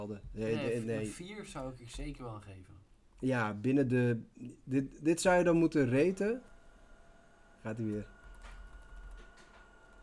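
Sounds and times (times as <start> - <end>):
speech: 0.0 - 6.5, 7.6 - 8.2
coffee machine running: 6.2 - 10.0.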